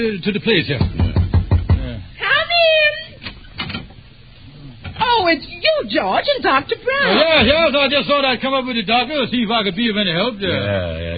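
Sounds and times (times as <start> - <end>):
speech: 0.0 - 1.0, 5.3 - 11.1
knocking on a door: 0.8 - 2.0.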